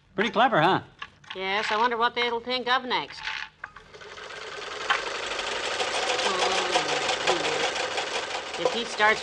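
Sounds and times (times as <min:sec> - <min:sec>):
speech: 0:00.2 - 0:03.3, 0:08.6 - 0:09.2
sewing machine winding thread onto a small bobbin with its built-in winder: 0:03.8 - 0:09.2.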